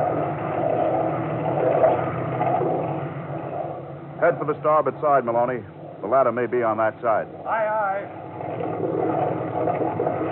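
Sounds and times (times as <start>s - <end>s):
boat from a salmon vessel droning as it pulls away across the water: 0.0s - 10.3s
speech: 4.3s - 8.2s.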